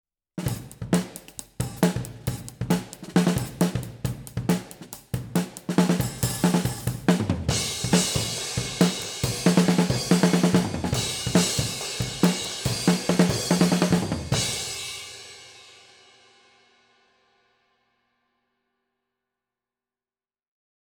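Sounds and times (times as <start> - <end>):
snare drum recorded from top: 0.4 - 15.3.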